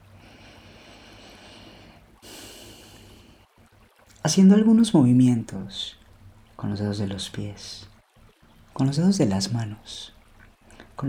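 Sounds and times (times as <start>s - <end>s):
slow deep breath with airy inhale and rushing exhale: 0.0s - 3.5s
speech: 4.2s - 6.0s, 6.6s - 7.9s, 8.8s - 10.2s.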